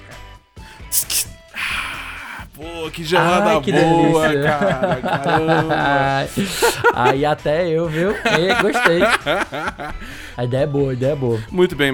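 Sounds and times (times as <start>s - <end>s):
beer can cracking open: 0.9s - 1.3s
speech: 2.6s - 11.9s
person laughing: 3.2s - 7.2s, 8.0s - 10.0s.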